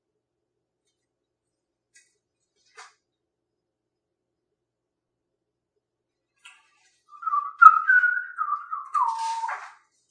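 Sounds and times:
person whistling: 0:07.2 - 0:09.7.

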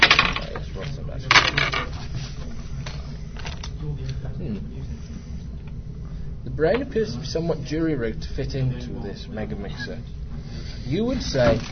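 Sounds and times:
dice rattling on a table: 0:00.0 - 0:00.6, 0:01.3 - 0:01.9
low steady hum: 0:00.0 - 0:11.7
speech: 0:06.6 - 0:10.2, 0:10.9 - 0:11.7.

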